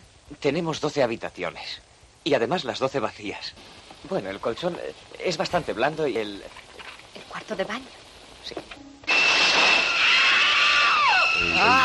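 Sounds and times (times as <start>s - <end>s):
speech: 0.3s - 6.6s, 7.3s - 8.8s, 11.5s - 11.8s
nerve-grating shriek from a film scene: 9.1s - 11.8s.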